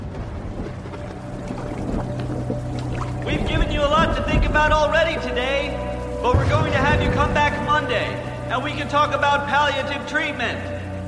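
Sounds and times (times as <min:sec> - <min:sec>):
rain water pouring and splashing into a hospital waiting room: 0:00.0 - 0:08.6
deep low rumble: 0:00.0 - 0:09.5
speech: 0:04.2 - 0:10.8.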